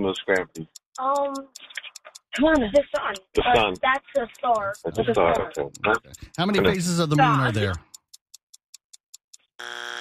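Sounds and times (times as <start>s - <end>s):
speech: 0.0s - 7.9s
countdown ticks: 0.0s - 9.5s
game show time-up buzzer: 9.6s - 9.9s.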